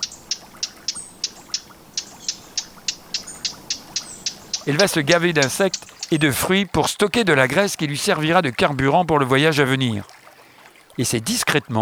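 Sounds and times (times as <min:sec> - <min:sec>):
bird's dry hard clicking call: 0:00.0 - 0:06.4
speech: 0:04.7 - 0:10.2, 0:11.0 - 0:11.8.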